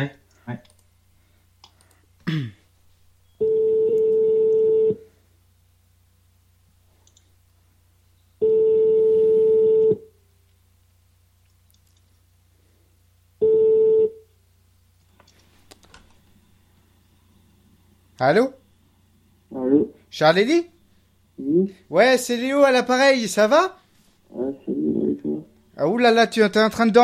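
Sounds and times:
speech: 0.0 - 0.7, 2.3 - 2.6, 18.2 - 18.6, 20.1 - 20.7, 21.4 - 24.6, 25.8 - 27.0
telephone ringback tone of an outgoing call: 3.4 - 5.0, 8.4 - 10.1, 13.4 - 14.2.

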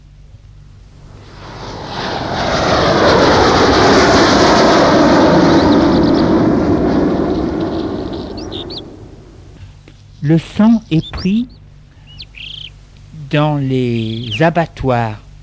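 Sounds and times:
airplane engines roaring overhead: 0.0 - 15.4
speech: 10.3 - 11.6, 13.3 - 15.2.

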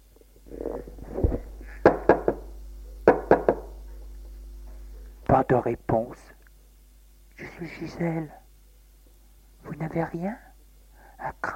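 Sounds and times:
low soft rustle: 0.2 - 1.7
knocking on a closed door: 1.8 - 2.4, 3.1 - 3.7
speech: 5.4 - 6.4, 7.6 - 8.4, 9.8 - 10.5, 11.2 - 11.5.

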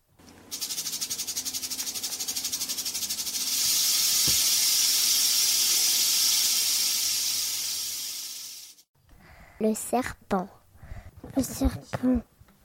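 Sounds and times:
snake hissing: 0.5 - 8.9
person talking: 11.2 - 12.3.

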